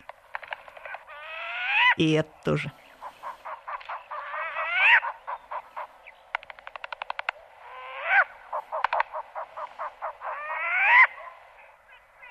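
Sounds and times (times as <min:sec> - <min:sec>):
speech: 0:02.0 - 0:02.8
short-eared owls hooting and trilling: 0:02.9 - 0:06.0, 0:06.9 - 0:12.2.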